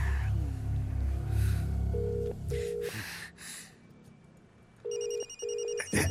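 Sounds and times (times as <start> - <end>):
low rumbling background: 0.0 - 6.0
phone ringing with electronic trills: 4.9 - 6.0.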